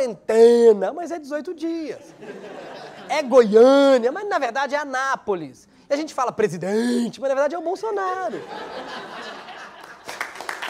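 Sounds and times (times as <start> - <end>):
speech: 0.0 - 9.3
laughter: 2.1 - 4.3, 8.0 - 10.2
audience applauding: 9.5 - 10.6.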